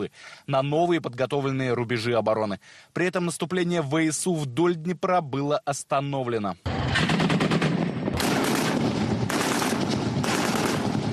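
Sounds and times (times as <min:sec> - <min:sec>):
speech: 0:00.0 - 0:07.1
heavy automatic cannon fire from an armored reconnaissance vehicle on a firing range: 0:06.7 - 0:11.1.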